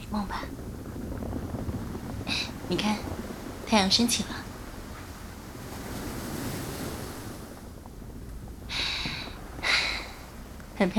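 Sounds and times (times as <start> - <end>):
faint wind rumble: 0.0 - 10.9
ocean waves washing onto the shore at sunrise: 0.0 - 10.9
speech: 0.1 - 0.6, 2.3 - 4.4, 10.8 - 10.9.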